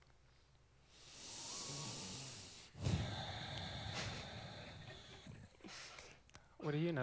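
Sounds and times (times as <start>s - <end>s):
person taking a deep breath: 0.9s - 6.2s.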